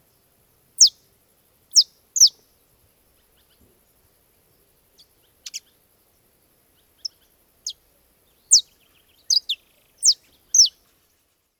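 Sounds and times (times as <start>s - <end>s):
Saffron finch singing: 0.8s - 1.0s, 1.7s - 2.5s, 5.0s - 5.8s, 6.8s - 10.8s.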